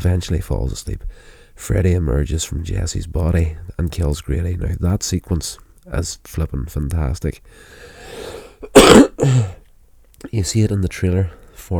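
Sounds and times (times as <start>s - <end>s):
speech: 0.0s - 8.0s, 8.7s - 9.6s, 10.2s - 11.7s
harsh cough: 8.6s - 9.6s
person clearing their throat with a throaty rasp: 8.6s - 9.6s.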